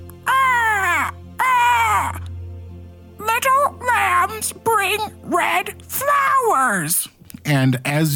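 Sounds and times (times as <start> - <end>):
human voice imitating crow cawing calls: 0.0 - 2.3, 3.2 - 6.8
speech: 4.4 - 8.1.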